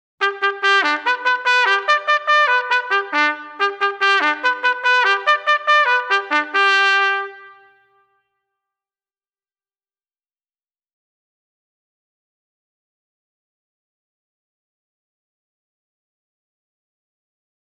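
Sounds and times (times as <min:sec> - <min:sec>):
bugle call: 0:00.2 - 0:08.1.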